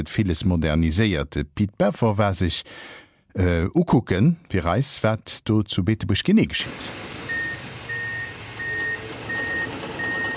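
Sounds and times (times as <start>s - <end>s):
speech: 0.0s - 7.2s
low traffic noise: 6.6s - 10.3s
rumbling construction vehicle engine: 6.7s - 10.3s
construction vehicle reversing alarm beeping: 7.2s - 10.3s.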